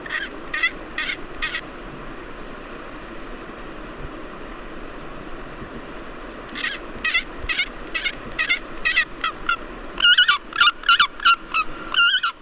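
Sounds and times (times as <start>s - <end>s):
Pallas's fish eagle giving harsh honking calls: 0.0s - 1.6s, 6.6s - 12.4s.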